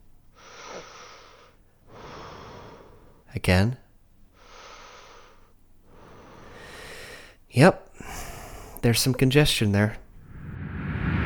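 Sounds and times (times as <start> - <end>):
breathing in and out during a chest examination: 0.3 - 3.3, 4.3 - 9.0
speech: 3.4 - 3.8, 7.6 - 7.8, 8.8 - 10.0.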